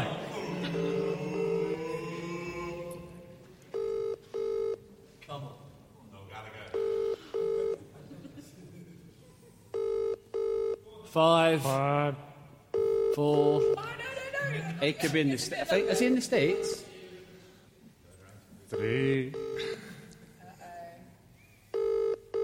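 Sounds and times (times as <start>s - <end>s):
laughter: 0.0s - 1.9s, 7.8s - 9.7s, 14.2s - 16.8s
electronic telephone keypad dialing tones: 3.7s - 4.8s, 6.8s - 7.8s, 9.8s - 10.8s, 12.7s - 13.8s, 18.8s - 19.6s, 21.7s - 22.4s
speech: 11.1s - 12.3s, 13.2s - 13.9s, 14.5s - 16.9s, 18.7s - 19.7s.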